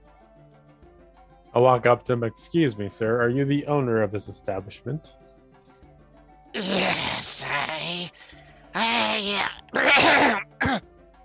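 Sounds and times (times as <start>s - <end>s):
speech: 1.5s - 5.2s, 6.6s - 8.4s, 9.2s - 10.8s
person clearing throat with meat pie stuck in the throat: 6.6s - 8.2s, 8.8s - 10.9s.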